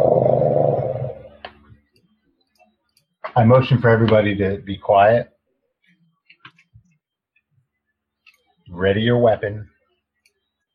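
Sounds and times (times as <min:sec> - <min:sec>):
deep rumbling creature growl: 0:00.0 - 0:01.4
speech: 0:03.4 - 0:05.3, 0:08.8 - 0:09.7.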